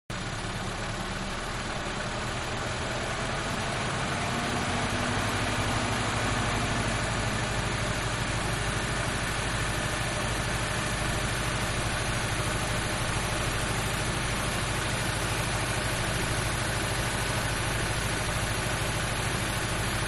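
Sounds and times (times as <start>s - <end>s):
mid size car idling exterior: 0.1s - 20.0s.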